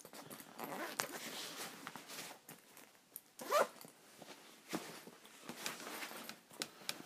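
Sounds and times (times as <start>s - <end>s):
fabric rustling: 0.0s - 7.0s
zipper being pulled closed: 0.5s - 1.7s, 3.4s - 3.8s.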